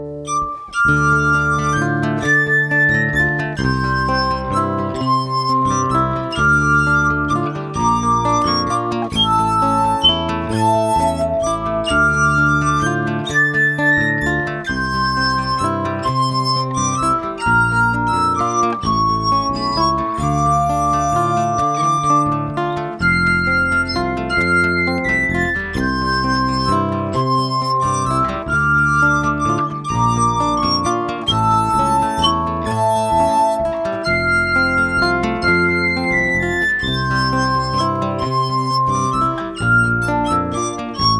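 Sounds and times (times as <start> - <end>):
glass harp: 0.3 - 41.1.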